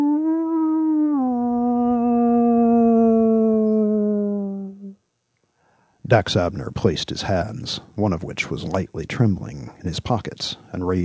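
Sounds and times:
low mournful howl in a warehouse: 0.0s - 5.0s
speech: 6.1s - 11.0s.

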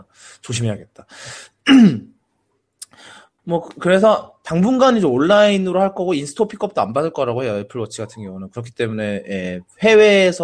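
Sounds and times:
speech: 0.0s - 2.1s, 3.0s - 10.4s
harsh throaty cough: 1.7s - 2.1s.

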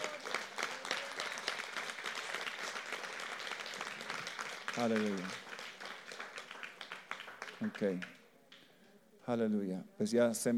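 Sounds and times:
audience applause after a Christian prayer: 0.0s - 8.2s
speech: 4.8s - 5.4s, 7.6s - 8.2s, 9.3s - 10.5s.

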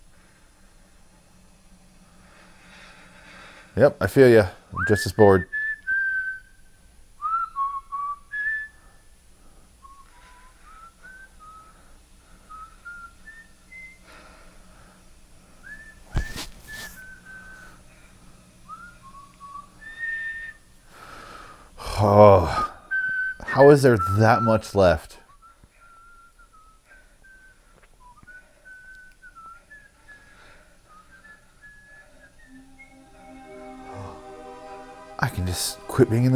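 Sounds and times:
speech: 3.8s - 5.6s, 23.8s - 25.2s, 35.6s - 36.3s
whistled melody: 4.8s - 9.0s, 9.8s - 14.4s, 15.6s - 18.0s, 18.6s - 20.7s, 22.9s - 24.6s, 25.3s - 36.3s.

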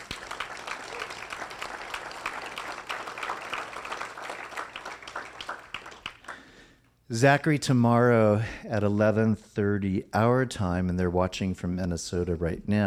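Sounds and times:
crowd applauding: 0.0s - 6.6s
speech: 7.1s - 12.8s.

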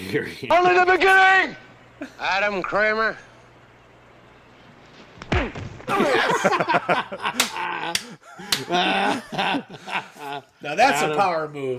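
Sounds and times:
speech: 0.1s - 3.3s, 5.4s - 11.7s
sharp slapping blows of karate chop to the neck: 7.4s - 8.8s.

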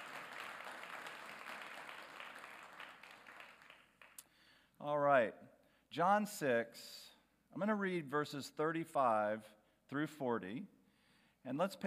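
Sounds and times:
crowd applauding: 0.0s - 4.2s
speech: 4.8s - 10.8s, 11.4s - 11.8s.

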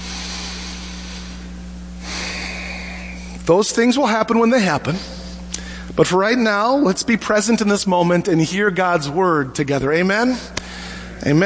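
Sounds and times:
church congregation taking a collective deep breath: 0.0s - 3.4s, 5.0s - 6.0s, 10.5s - 11.2s
steady low hum: 0.0s - 11.4s
speech: 3.5s - 5.2s, 6.0s - 10.6s, 11.2s - 11.4s.

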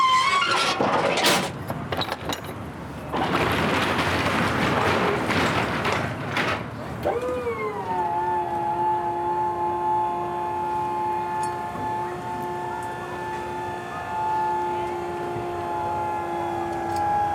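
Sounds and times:
collection truck engine rumbling: 0.0s - 8.2s, 9.4s - 17.3s
steady mechanical whine: 7.0s - 17.3s.

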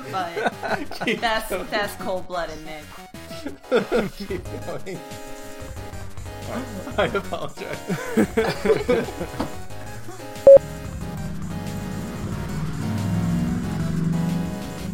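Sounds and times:
laughter: 0.0s - 1.5s, 3.3s - 4.4s, 6.5s - 9.6s
speech: 0.1s - 5.3s, 6.5s - 9.6s
motorcycle engine revving as rider practices wheelies: 11.2s - 14.9s.

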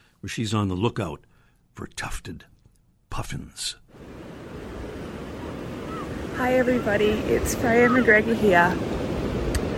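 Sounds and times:
speech: 0.2s - 2.5s, 3.2s - 4.1s, 6.4s - 9.0s
ocean surf breaking on the coast of Oregon: 3.6s - 9.7s
wind buffeting the microphone: 3.9s - 9.7s.

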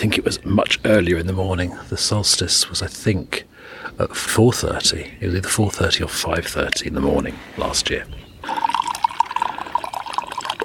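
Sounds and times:
speech: 0.0s - 8.6s
tea pouring into a cup: 8.4s - 10.6s.

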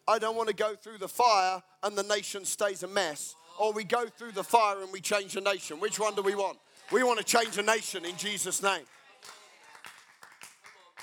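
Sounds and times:
speech: 0.1s - 9.4s
audience clapping at a sermon: 6.0s - 11.0s.

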